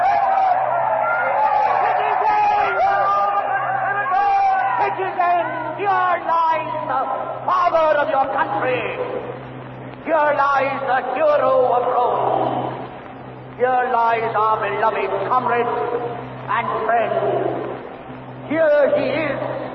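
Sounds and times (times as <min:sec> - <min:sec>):
large crowd shouting and clamoring in a frenzied uproar: 0:00.0 - 0:07.5
speech: 0:06.9 - 0:09.4, 0:10.0 - 0:12.6, 0:13.6 - 0:17.6, 0:18.5 - 0:19.5.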